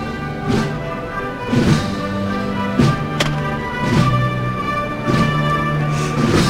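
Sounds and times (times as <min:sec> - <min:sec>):
marching band brass playing sustained chords in a religious procession: 0:00.0 - 0:06.4
marching band heavy drum strikes in a religious procession: 0:02.8 - 0:04.3.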